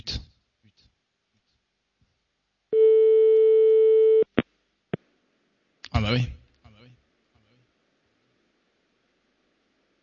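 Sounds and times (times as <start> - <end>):
long steady clear telephone tone after a call hangs up: 2.8 - 4.3
speech: 6.0 - 6.4.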